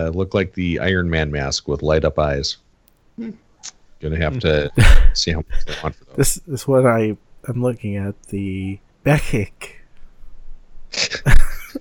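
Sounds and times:
speech: 0.0 - 2.6, 3.2 - 9.8
person sneezing: 4.8 - 5.2.

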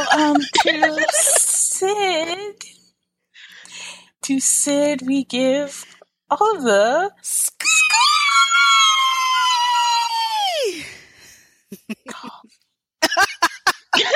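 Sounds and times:
laughter: 0.0 - 1.7, 11.7 - 12.4, 13.0 - 14.1
speech: 0.2 - 2.6, 4.3 - 7.6
scream sound effect: 7.6 - 10.8.

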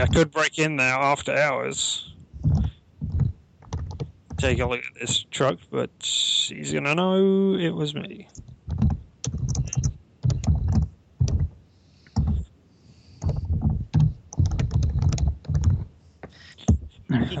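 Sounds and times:
heavy typing on a computer keyboard: 0.0 - 0.3, 2.2 - 5.4, 8.4 - 12.5, 13.2 - 17.3
speech: 0.0 - 2.1, 4.4 - 8.4.

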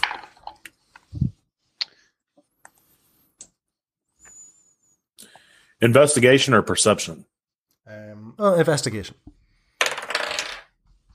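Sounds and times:
speech: 5.8 - 7.4, 8.4 - 9.3
new dice rolling on a hard table for an investigation check: 9.8 - 10.8.

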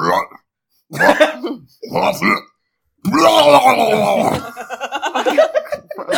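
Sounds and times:
voice making wet gurgling retching noises imitating a sludge bomb attack: 1.0 - 4.6
laughter: 4.3 - 6.1.

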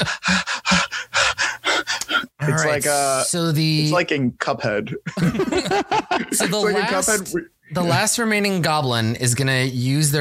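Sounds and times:
person imitating heavy rapid panting: 0.0 - 2.4
speech: 2.5 - 10.1
laughter: 4.8 - 7.4.

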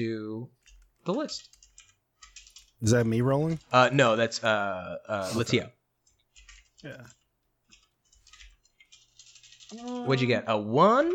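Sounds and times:
speech: 0.0 - 1.6, 2.8 - 5.8, 6.8 - 7.2, 9.7 - 11.1
typing on a computer keyboard: 0.6 - 3.9, 6.0 - 11.1.

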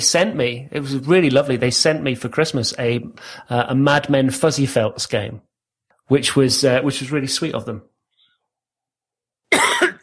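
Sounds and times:
speech: 0.0 - 5.5, 6.1 - 7.9
person coughing: 9.5 - 10.0.

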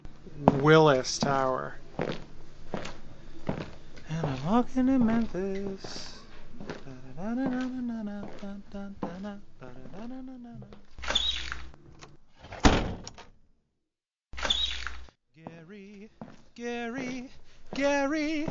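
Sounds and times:
speech: 0.4 - 2.2, 4.5 - 10.9, 15.5 - 18.4
unlocked sliding door opening with a rolling rush: 11.0 - 13.3
sharp door thunk: 12.6 - 13.2.

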